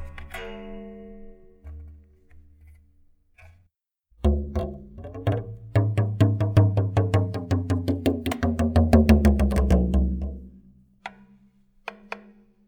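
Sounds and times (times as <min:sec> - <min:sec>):
toy drum tom: 0:04.3 - 0:12.4.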